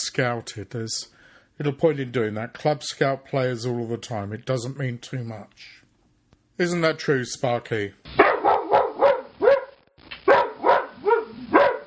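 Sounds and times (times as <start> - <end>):
speech: 0.1 - 5.8, 6.6 - 8.0
dog barking sharp yappy barks: 8.2 - 11.8.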